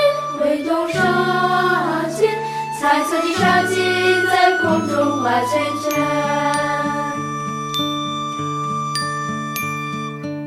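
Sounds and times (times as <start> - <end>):
sustained tonal backing: 0.0 - 10.2
bells ringing: 3.9 - 10.2.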